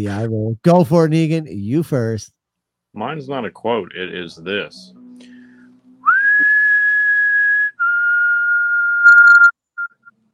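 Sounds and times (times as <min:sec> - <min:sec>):
speech: 0:00.0 - 0:05.3
person whistling a short famous melody: 0:05.1 - 0:10.1.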